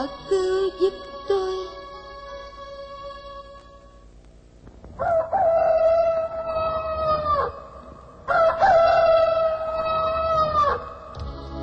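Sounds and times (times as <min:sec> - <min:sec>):
speech: 0:00.0 - 0:01.2
rooster crowing: 0:04.9 - 0:11.2.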